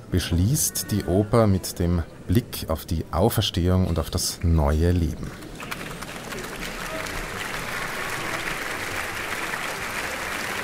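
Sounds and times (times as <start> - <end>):
speech: 0.1 - 5.5
large audience applauding in an opera house: 5.4 - 10.6.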